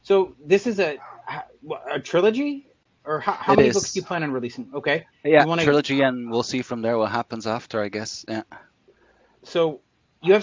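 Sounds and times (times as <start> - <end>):
speech: 0.1 - 8.7, 9.4 - 10.4
dogs barking: 1.0 - 1.5.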